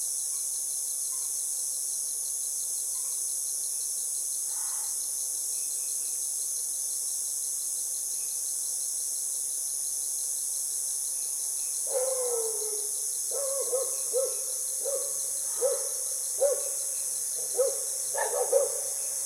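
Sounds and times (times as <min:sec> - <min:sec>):
frog calls with harmonics in the evening: 0:11.9 - 0:19.2.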